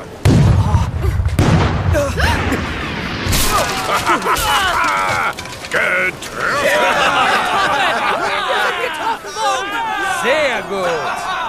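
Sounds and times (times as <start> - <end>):
pirate ship's cannons firing astern: 0.2 - 4.9
laughter: 2.0 - 11.4.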